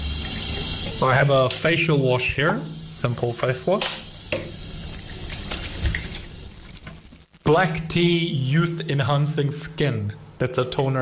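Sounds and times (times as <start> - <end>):
warm water running from a tap into a sink: 0.0 - 7.0
speech: 0.9 - 4.0, 7.5 - 11.0.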